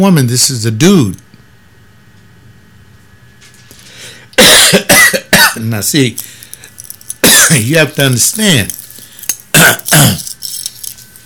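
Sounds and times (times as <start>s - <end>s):
speech: 0.0s - 1.3s, 4.4s - 6.4s, 7.4s - 8.8s, 9.6s - 10.3s
harsh coughs: 4.4s - 5.6s, 7.2s - 7.6s, 9.5s - 10.3s.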